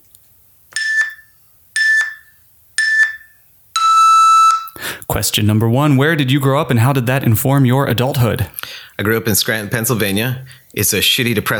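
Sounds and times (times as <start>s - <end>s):
short bright electronic interview question beeps: 0.8s - 4.8s
speech: 5.2s - 11.5s.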